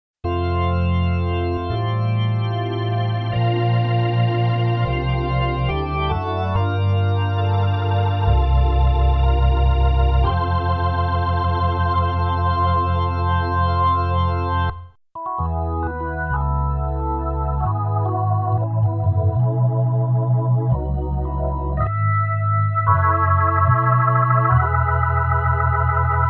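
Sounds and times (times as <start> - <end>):
ballad played on a Kronos OASYS synthesizer: 0.3 - 26.2.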